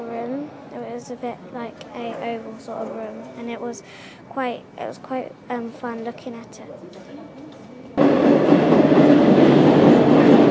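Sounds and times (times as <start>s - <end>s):
speech: 1.0s - 7.5s
metro train rumbling along the rails: 8.0s - 10.4s.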